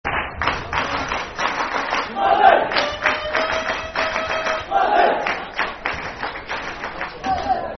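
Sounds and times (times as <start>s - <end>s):
people clapping: 0.0s - 7.7s
football crowd chanting a soccer song: 2.1s - 3.0s, 4.6s - 5.5s.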